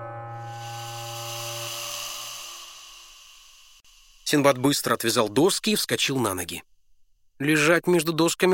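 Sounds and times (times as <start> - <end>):
low droning hum: 0.0 - 3.9
snake hissing: 0.5 - 5.0
speech: 4.3 - 6.7, 7.4 - 8.5.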